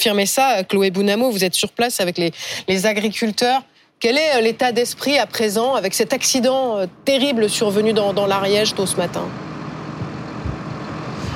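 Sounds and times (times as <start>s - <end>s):
speech: 0.0s - 9.5s
heavy tractor engines idling at a highway blockade: 7.2s - 11.3s.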